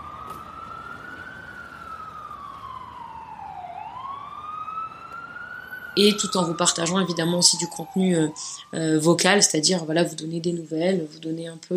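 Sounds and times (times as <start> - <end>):
ambulance siren wailing: 0.0 - 11.7
low rumble of road noise: 0.0 - 11.7
speech: 6.0 - 11.7.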